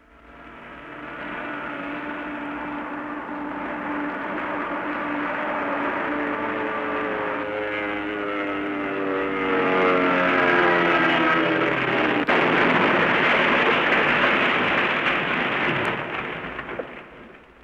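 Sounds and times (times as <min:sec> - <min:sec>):
WWII airplane: 0:00.0 - 0:17.6
crash: 0:12.1 - 0:17.6.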